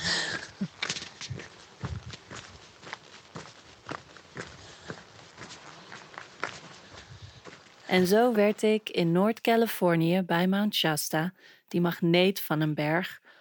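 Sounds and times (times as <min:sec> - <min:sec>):
faint outdoor ambience: 0:00.0 - 0:13.3
footsteps crunching on a gravelly hiking trail: 0:00.4 - 0:08.6
speech: 0:07.9 - 0:13.2.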